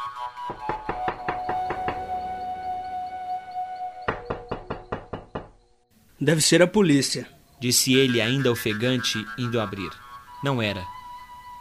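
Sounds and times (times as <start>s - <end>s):
knocking on a door: 0.5s - 2.1s, 4.1s - 5.6s
speech: 6.2s - 10.9s.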